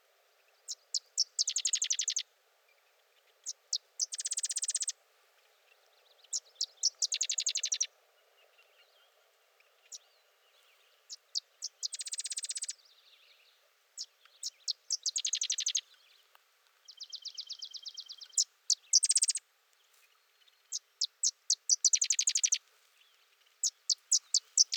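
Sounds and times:
sedge wren singing chips and chattering trill: 0.7s - 2.2s, 3.7s - 4.9s, 6.3s - 7.9s, 11.6s - 12.8s, 14.7s - 15.8s, 17.0s - 19.4s, 20.7s - 22.6s, 23.6s - 24.7s.

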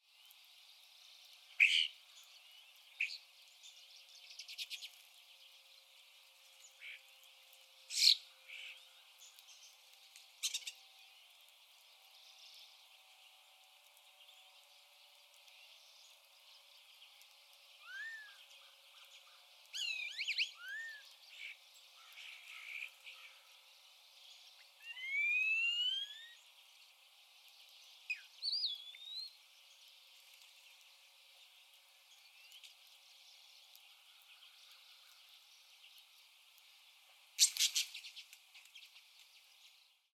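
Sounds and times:
European starling calling: 1.5s - 2.3s, 7.9s - 9.4s, 10.4s - 10.8s, 17.8s - 23.6s, 24.6s - 26.5s, 28.1s - 29.4s, 37.4s - 39.0s.

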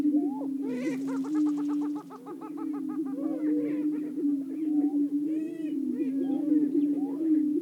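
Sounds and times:
greater prairie-chickens booming: 0.1s - 7.4s
ferruginous hawk cackling: 0.6s - 4.5s.

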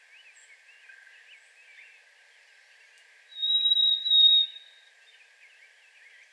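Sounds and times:
Harris's sparrow singing in a yard: 3.3s - 6.3s.

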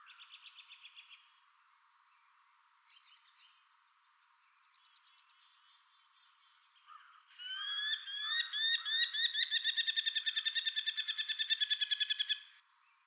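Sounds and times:
merlin calling a rapid series of sharp harsh notes: 7.4s - 12.6s.

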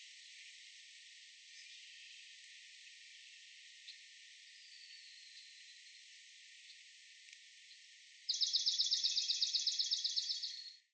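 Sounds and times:
swamp sparrow steady trill: 8.3s - 10.7s.

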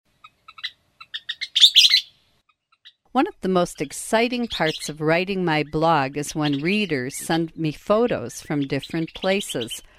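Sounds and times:
Western Kingbird calls: 0.2s - 3.0s, 3.8s - 7.4s, 8.2s - 9.9s
speech: 3.1s - 9.9s.

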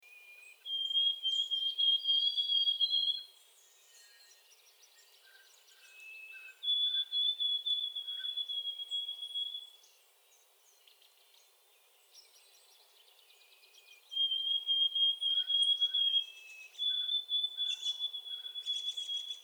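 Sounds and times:
White-throated Sparrow songs: 0.0s - 19.4s.

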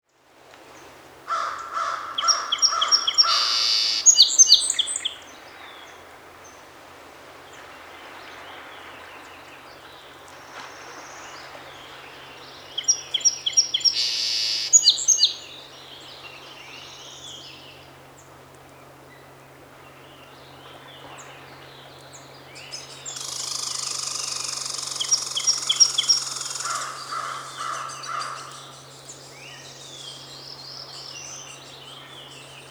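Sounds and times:
song sparrow singing: 2.2s - 5.3s, 12.5s - 17.9s, 19.9s - 32.6s.

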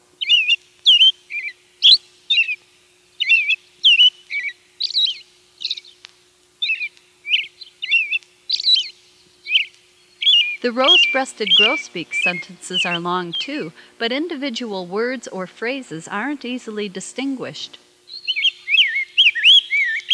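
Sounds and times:
American Robin singing whistled phrases: 0.2s - 2.6s, 3.2s - 6.0s, 6.6s - 13.8s, 18.1s - 20.1s
speech: 10.6s - 17.8s.

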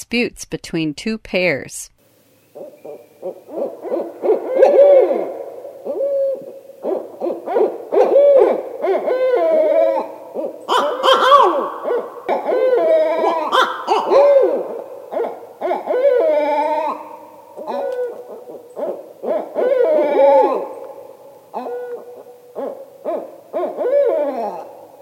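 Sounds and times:
speech: 0.0s - 1.9s
male owl giving loud hoo-wah contact calls: 2.6s - 25.0s.

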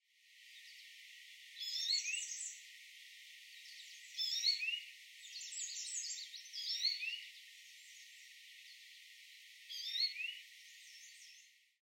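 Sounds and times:
American goldfinch calling: 1.6s - 2.6s, 3.7s - 7.3s, 9.7s - 11.4s.

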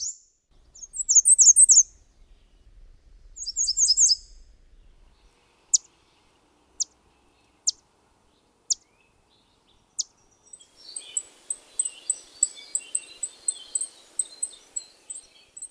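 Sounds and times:
American Redstart song with high jumbled notes: 0.0s - 15.6s.

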